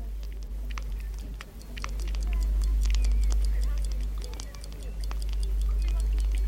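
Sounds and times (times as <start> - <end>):
old clock being wound and ticking: 0.0 - 6.4.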